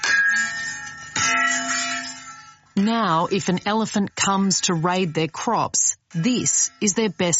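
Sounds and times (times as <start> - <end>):
bell struck with a stick to scare off elephants: 0.0 - 2.6
speech: 2.8 - 7.3.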